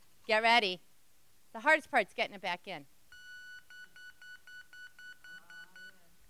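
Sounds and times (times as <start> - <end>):
speech: 0.3 - 0.9, 1.5 - 2.9
beep baseball emitting sharp electronic beeps: 3.1 - 6.0.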